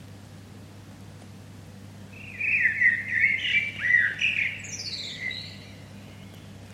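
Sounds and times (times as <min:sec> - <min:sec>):
steady low background hum: 0:00.0 - 0:06.7
Common blackbird Turdus merula singing: 0:02.1 - 0:06.6.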